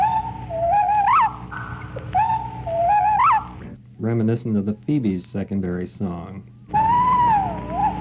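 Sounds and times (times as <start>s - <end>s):
slowed-down whippoorwill song: 0.0s - 3.8s, 6.7s - 7.9s
hiss: 0.0s - 7.9s
speech: 4.1s - 6.6s.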